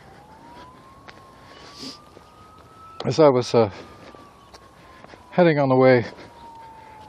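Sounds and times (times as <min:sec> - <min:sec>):
emergency vehicle siren wailing: 0:00.0 - 0:07.0
road and traffic noise: 0:00.0 - 0:07.0
speech: 0:01.8 - 0:02.1, 0:03.1 - 0:03.9, 0:05.4 - 0:06.2.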